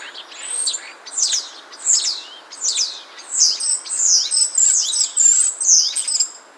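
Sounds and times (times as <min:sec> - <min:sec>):
Common starling singing whistles and buzzy grating phrases: 0:00.0 - 0:06.4.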